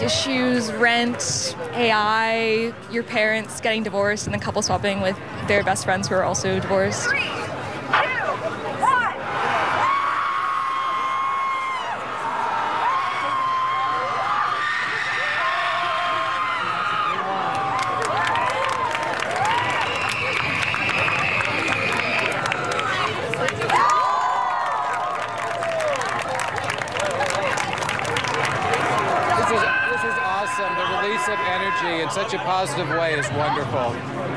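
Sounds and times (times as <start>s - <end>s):
speech: 0.0s - 8.1s
crowd screaming and cheering at a seaside screaming contest: 7.1s - 34.3s
crowd whooping at a seaside screaming contest: 8.8s - 32.2s
crowd clapping at a seaside screaming contest: 17.2s - 30.1s.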